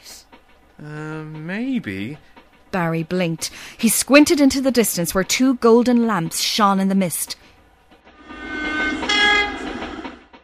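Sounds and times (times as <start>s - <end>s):
train rumbling past with low rolling roar: 0.0s - 10.4s
speech: 0.8s - 7.5s
bright sustained horn-like tones from passing train: 8.2s - 10.2s.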